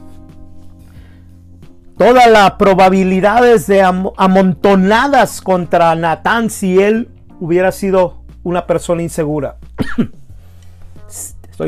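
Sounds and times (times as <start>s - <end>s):
speech: 2.0s - 10.2s, 11.1s - 11.6s
person coughing: 9.8s - 10.3s.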